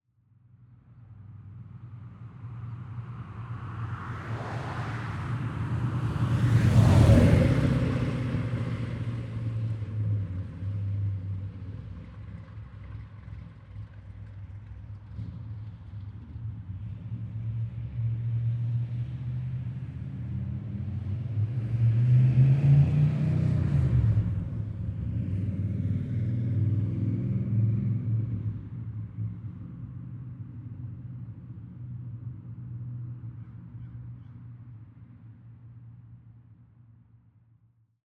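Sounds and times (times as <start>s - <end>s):
1967 Corvette approaching and accelerating from left to right: 0.8s - 37.0s
lead car passing from left to right: 3.5s - 8.5s.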